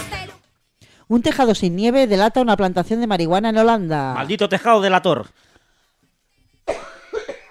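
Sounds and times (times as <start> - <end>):
speech: 1.1 - 5.5
person coughing: 6.7 - 7.4.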